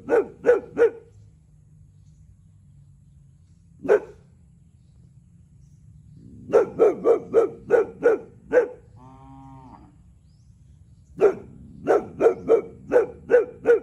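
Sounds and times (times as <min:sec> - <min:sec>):
Boxer dog barking: 0:00.0 - 0:01.1, 0:03.8 - 0:04.2, 0:06.5 - 0:08.9, 0:11.2 - 0:13.8.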